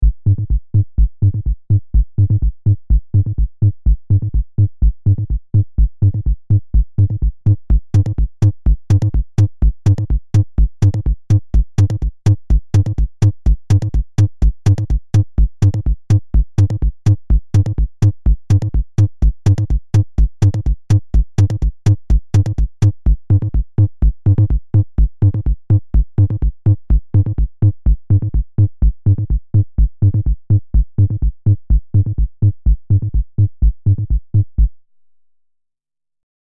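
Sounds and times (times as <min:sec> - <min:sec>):
drum machine bass drum: 0:00.0 - 0:34.8
drum machine hi-hat: 0:06.2 - 0:34.7.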